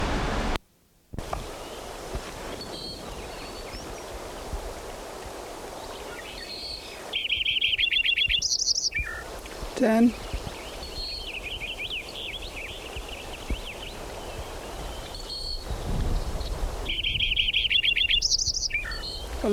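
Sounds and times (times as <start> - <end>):
steady hissing stream-like noise: 0.0 - 0.6, 1.2 - 19.5
Lincoln's sparrow singing a rapid bubbling trilled song: 2.5 - 4.2, 5.8 - 19.5
speech: 9.8 - 10.3.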